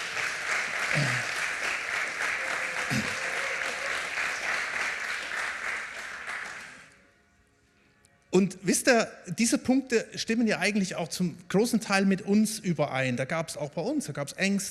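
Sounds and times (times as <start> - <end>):
crowd applauding for the worship team: 0.0 - 7.0
speech: 0.9 - 1.3, 8.4 - 14.7.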